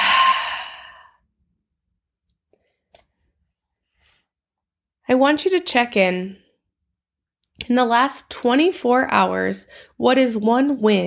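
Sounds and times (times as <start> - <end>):
deep breath exhaled during a guided breathing exercise: 0.0 - 1.2
speech: 5.1 - 6.4, 7.6 - 11.0.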